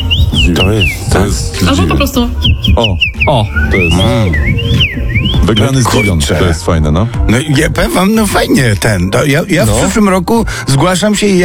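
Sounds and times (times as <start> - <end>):
common rosefinch singing: 0.0 - 6.6
speech: 0.5 - 11.4.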